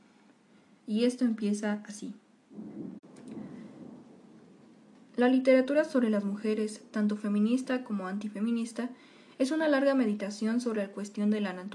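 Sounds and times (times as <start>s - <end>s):
speech: 0.9s - 2.2s, 5.2s - 11.7s
low rolling rumble of thunder: 2.5s - 5.3s
steady heavy rain: 2.6s - 5.2s.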